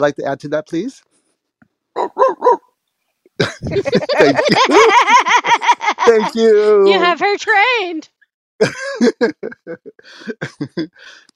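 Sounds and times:
speech: 0:00.0 - 0:01.1, 0:02.0 - 0:02.6, 0:03.6 - 0:11.3
dog barking: 0:02.0 - 0:02.7
laughter: 0:03.4 - 0:07.0, 0:08.6 - 0:11.2.

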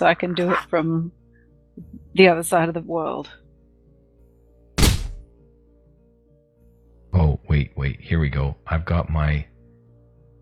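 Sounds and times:
speech: 0:00.0 - 0:01.2, 0:01.8 - 0:03.4, 0:07.8 - 0:09.5
heavy dull punch thud on a dead bear carcass: 0:04.8 - 0:05.3.

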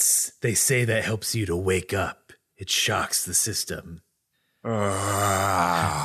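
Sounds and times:
speech: 0:00.4 - 0:06.0
person yawning with a voiced groaning tone: 0:04.7 - 0:06.0.

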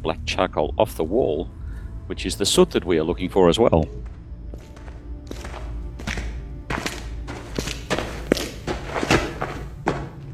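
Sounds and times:
speech: 0:00.0 - 0:04.1
low rumble: 0:00.0 - 0:10.3
footsteps at a steady walking pace: 0:03.9 - 0:10.3.

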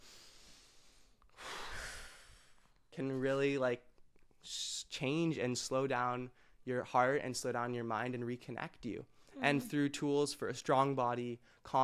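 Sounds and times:
deep breath in and out: 0:00.0 - 0:02.7
speech: 0:03.0 - 0:11.8.

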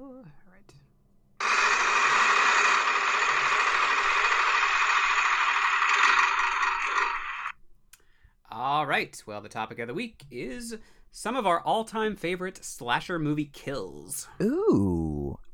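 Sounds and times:
prize wheel spinning: 0:01.4 - 0:07.5
speech: 0:09.0 - 0:15.1.

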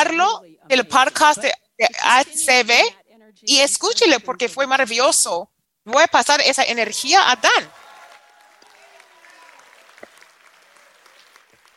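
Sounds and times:
speech: 0:00.1 - 0:07.8
crowd clapping: 0:06.8 - 0:11.7
scattered shouts and cheers: 0:07.4 - 0:11.4.

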